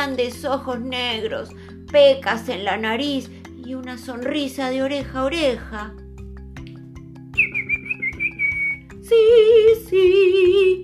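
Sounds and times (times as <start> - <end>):
speech: 0.0 - 6.0, 9.1 - 10.8
small bird trilling: 7.4 - 8.9.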